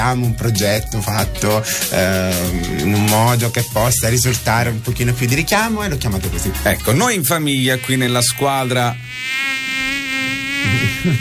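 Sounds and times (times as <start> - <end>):
speech: 0.0 - 9.4, 10.6 - 11.1
bee buzzing near an open window: 6.3 - 11.1.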